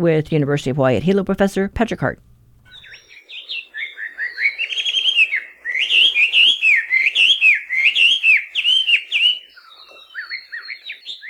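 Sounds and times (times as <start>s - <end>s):
speech: 0.0s - 2.3s
melodious laughing thrush song: 2.7s - 11.2s.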